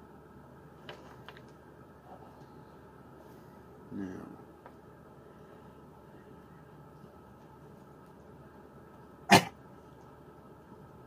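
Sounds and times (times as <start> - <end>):
faint steady noise: 0.0 - 11.0
dog barking: 9.3 - 9.6.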